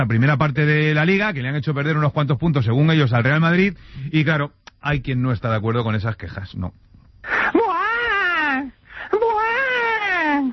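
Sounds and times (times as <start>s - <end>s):
speech: 0.0s - 6.8s
wailing cries like exaggerated sobbing: 7.3s - 10.5s.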